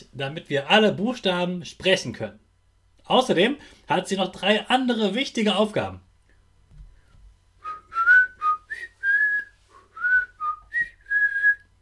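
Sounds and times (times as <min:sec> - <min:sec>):
speech: 0:00.2 - 0:02.4, 0:03.1 - 0:06.1
person whistling a short lilting tune: 0:07.6 - 0:11.7.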